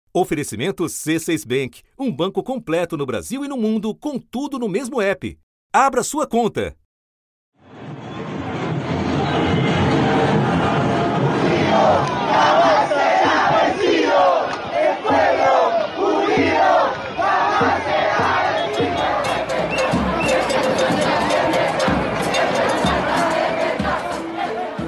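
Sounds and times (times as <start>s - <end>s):
speech: 0.2s - 6.8s
large crowd shouting and chanting celebrating election result in city streets: 8.2s - 24.8s
whistles: 18.5s - 20.5s.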